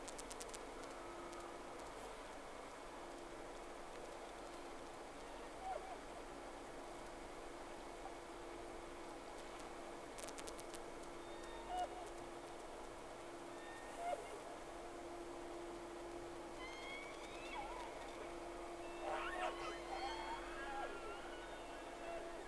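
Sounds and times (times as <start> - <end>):
low hum: 0.0 - 22.4
whale tonal calls: 11.2 - 12.1, 13.6 - 14.4, 16.6 - 18.2, 18.8 - 22.4.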